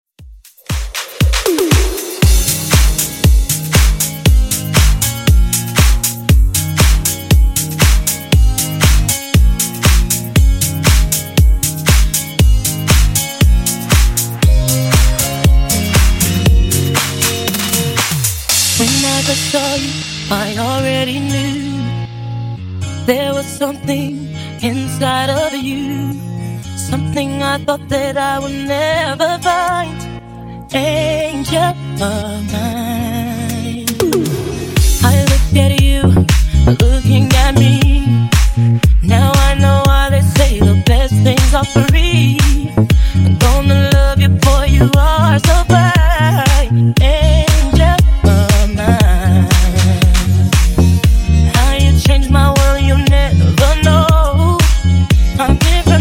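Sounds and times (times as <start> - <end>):
disco funk edit: 0.2 - 30.2, 30.8 - 56.0.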